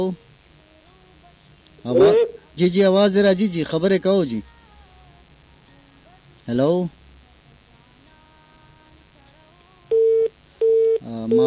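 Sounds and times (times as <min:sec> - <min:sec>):
speech: 0:00.0 - 0:00.3, 0:01.8 - 0:04.5, 0:06.4 - 0:07.0, 0:11.2 - 0:11.4
faint telephone line hiss: 0:00.0 - 0:11.4
telephone busy tone after a dropped call: 0:09.9 - 0:11.4.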